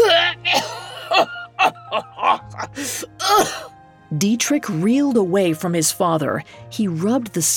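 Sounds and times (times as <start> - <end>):
dying old man coughing harshly on a bed: 0.0 - 3.7
speech: 4.2 - 7.5.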